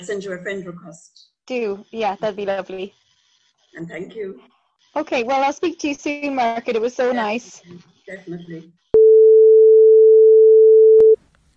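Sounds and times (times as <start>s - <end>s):
speech: 0.0s - 3.0s, 3.7s - 8.8s
phone tone humming as the call ends: 9.0s - 11.2s.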